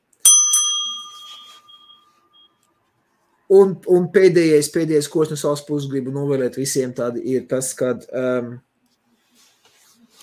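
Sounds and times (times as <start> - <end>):
notification bell sound effect with bright metallic dings: 0.2 - 2.6
speech: 3.5 - 8.7.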